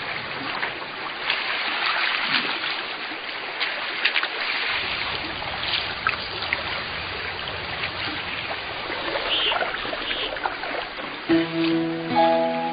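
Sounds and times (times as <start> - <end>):
thawing river rushing in spring: 0.0 - 12.7
brief tonal call: 11.3 - 12.7.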